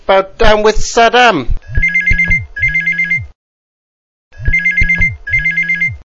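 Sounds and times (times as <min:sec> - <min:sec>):
speech: 0:00.1 - 0:01.9
telephone ringing in double-ring cadence: 0:01.6 - 0:03.3, 0:04.4 - 0:06.0.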